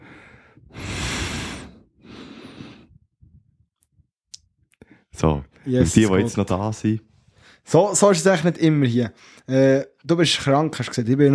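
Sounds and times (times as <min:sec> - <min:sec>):
long heavy breaths pushed loudly through the nose: 0:00.0 - 0:03.1
speech: 0:05.2 - 0:11.3.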